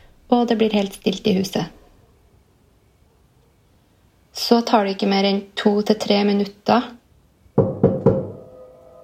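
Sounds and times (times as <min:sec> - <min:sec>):
speech: 0:00.3 - 0:01.8, 0:04.4 - 0:07.0
firm knocks on a bedroom door: 0:07.6 - 0:08.4.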